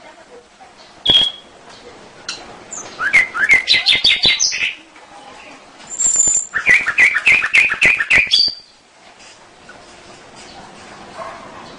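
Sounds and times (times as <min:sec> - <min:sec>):
canary twittering: 0:01.0 - 0:01.5, 0:02.3 - 0:04.8, 0:05.9 - 0:08.8.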